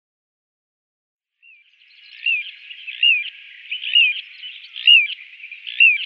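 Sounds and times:
little ringed plover giving short descending whistled calls: 1.4 - 6.0.

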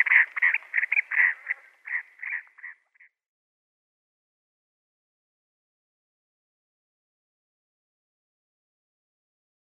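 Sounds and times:
chestnut-bellied sandgrouse chattering calls: 0.0 - 2.8.

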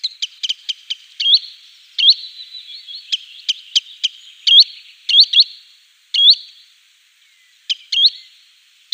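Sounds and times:
green sandpiper calls: 0.0 - 5.6, 6.2 - 6.6.

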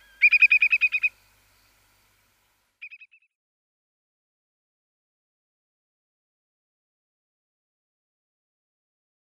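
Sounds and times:
whimbrel calls: 0.0 - 1.8, 2.8 - 3.3.

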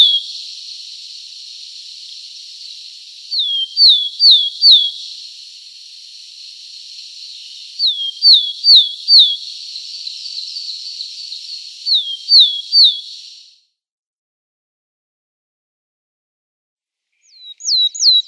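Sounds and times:
willow tit singing descending whistled notes: 0.0 - 13.5, 17.2 - 18.2
steady background hiss: 0.0 - 13.6.

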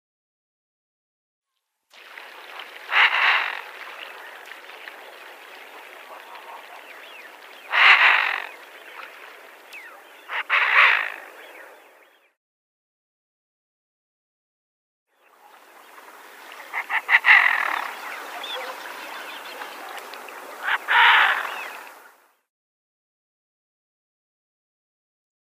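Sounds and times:
female Eurasian Wigeon calling: 2.9 - 3.7, 7.7 - 8.6, 10.3 - 11.3, 16.7 - 18.8, 20.6 - 21.8.

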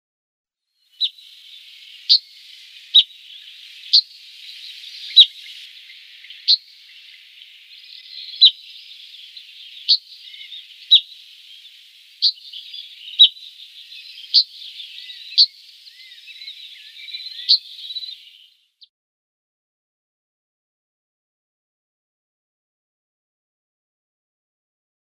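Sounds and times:
Cinereous Bunting calls: 0.9 - 18.5.

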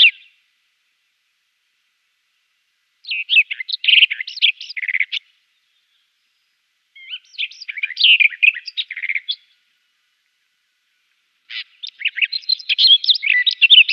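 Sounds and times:
Barred warbler song of scratchy warbled notes: 0.0 - 0.3, 3.0 - 5.2, 7.0 - 9.5, 11.5 - 13.9.

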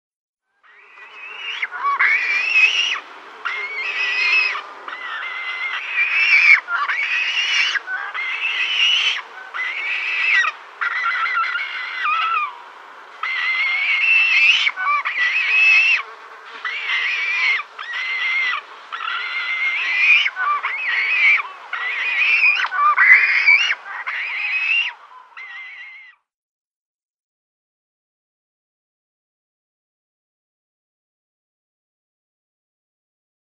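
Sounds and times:
European Shag nestlings: 0.7 - 26.1.

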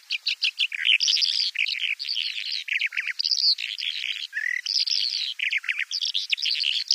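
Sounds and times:
bimaculated lark song: 0.0 - 6.9.

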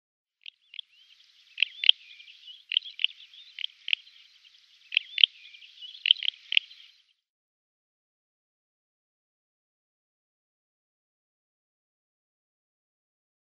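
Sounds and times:
Red-rumped Wheatear calls: 0.4 - 7.0.

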